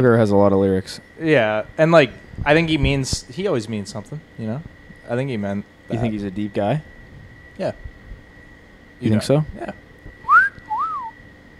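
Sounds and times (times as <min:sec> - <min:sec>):
speech: 0:00.0 - 0:07.0, 0:07.6 - 0:07.9, 0:09.0 - 0:09.8
person whistling a short tune from a song: 0:10.2 - 0:11.2.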